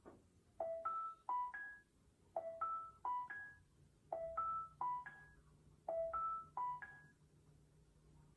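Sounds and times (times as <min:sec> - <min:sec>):
washing machine end alarm: 0:00.6 - 0:07.2.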